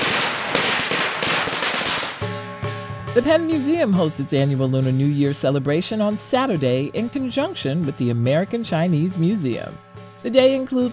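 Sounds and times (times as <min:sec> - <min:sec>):
string of firecrackers crackling and popping: 0:00.0 - 0:02.4
speech: 0:03.2 - 0:10.9.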